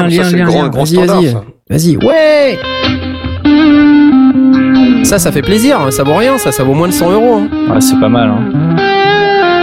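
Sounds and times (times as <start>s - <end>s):
speech: 0.0s - 3.0s, 4.8s - 8.8s
electric guitar through a distortion pedal, heavily distorted: 2.0s - 9.6s.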